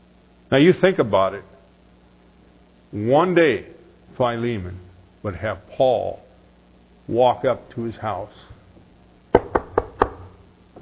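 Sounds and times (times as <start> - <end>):
faint room hum: 0.0 - 10.7
speech: 0.5 - 1.5, 2.9 - 6.2, 7.1 - 8.5
firm knocking on a door: 9.3 - 10.3.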